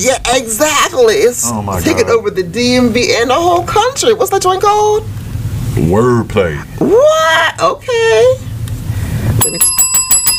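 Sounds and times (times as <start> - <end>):
speech: 0.0 - 5.2, 5.8 - 8.5, 9.4 - 9.8
bicycle bell ringing: 9.4 - 10.3.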